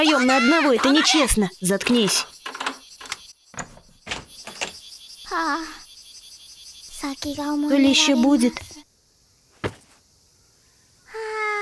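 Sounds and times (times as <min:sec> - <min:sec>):
speech: 0:00.0 - 0:02.4, 0:05.3 - 0:05.8, 0:07.0 - 0:08.8
door latch and handle clicks and clunks: 0:01.8 - 0:04.8.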